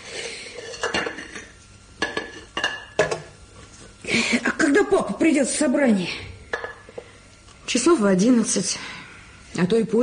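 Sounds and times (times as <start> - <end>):
faint kitchen clatter of dishes being handled and stacked: 0.0 - 8.0
ceramic plates clinking while washing and drying dishes: 0.5 - 3.3
speech: 4.9 - 6.3, 7.8 - 9.0, 9.6 - 10.0.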